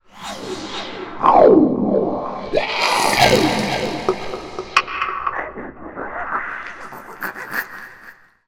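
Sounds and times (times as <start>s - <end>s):
horror sound design sweeps: 0.0s - 7.6s
horror sound design impact hits: 2.4s - 6.0s.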